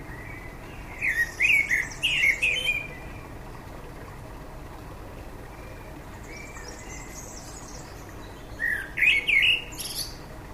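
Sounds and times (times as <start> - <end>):
common blackbird Turdus merula singing: 0.0 - 3.4, 5.5 - 10.3.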